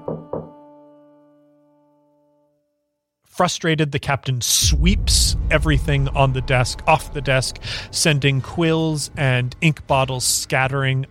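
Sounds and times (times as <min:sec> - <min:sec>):
knocks on a wooden door: 0:00.0 - 0:00.5
speech: 0:03.4 - 0:11.0.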